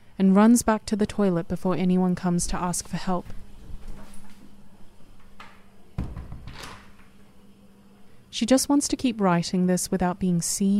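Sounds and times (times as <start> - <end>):
steady low electrical hum: 0.0 - 10.7
speech: 0.2 - 3.4, 8.4 - 10.7
sliding door dull thump: 5.4 - 6.9.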